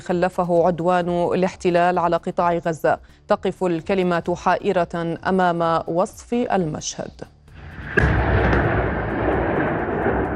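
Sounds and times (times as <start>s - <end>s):
speech: 0.0s - 7.3s, 8.0s - 8.5s
heavy artillery cannon boom: 7.6s - 10.3s
long loud rumbling roar: 7.6s - 10.3s.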